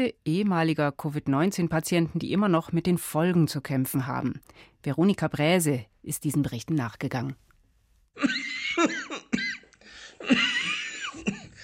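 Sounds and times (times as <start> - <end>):
speech: 0.0 - 7.4, 8.2 - 9.0
harsh dry coughing: 8.2 - 11.6
sharp breaths between coughs: 9.8 - 10.2.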